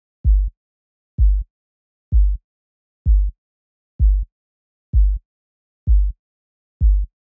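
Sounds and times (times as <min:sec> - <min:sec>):
hopper sub bass at 128 BPM: 0:00.3 - 0:00.5, 0:01.2 - 0:01.4, 0:02.1 - 0:02.4, 0:03.1 - 0:03.3, 0:04.0 - 0:04.3, 0:05.0 - 0:05.2, 0:05.9 - 0:06.1, 0:06.8 - 0:07.1.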